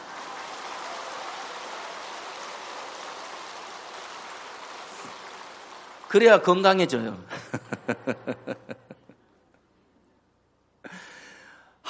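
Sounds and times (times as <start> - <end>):
audience clapping enthusiastically: 0.0 - 7.8
speech: 6.1 - 7.5
laughter: 7.3 - 9.2.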